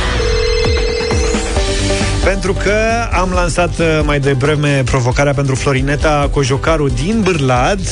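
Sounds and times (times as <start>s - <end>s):
telephone ringing with electronic tones: 0.1s - 2.2s
speech: 2.3s - 7.9s.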